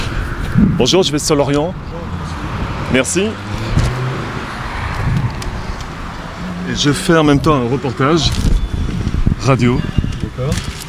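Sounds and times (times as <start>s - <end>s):
car engine idling at the roadside: 0.0s - 10.8s
hissing road and wind noise: 0.0s - 10.8s
speech: 0.6s - 2.2s, 2.9s - 3.5s, 6.7s - 8.5s, 9.4s - 10.7s.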